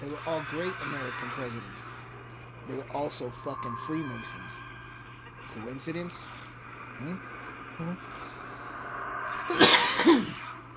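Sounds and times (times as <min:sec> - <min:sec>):
speech: 0:00.0 - 0:02.0, 0:02.7 - 0:04.7, 0:05.4 - 0:08.3, 0:09.5 - 0:10.3
steady hum: 0:00.0 - 0:10.7
harsh coughing after taking a dab: 0:09.5 - 0:10.4.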